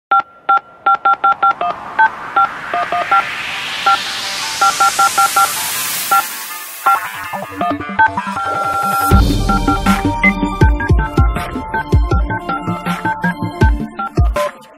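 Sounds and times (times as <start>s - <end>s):
dial tone beep: 0.1s - 4.0s, 4.6s - 9.2s
theme music on a phone line: 1.2s - 14.7s.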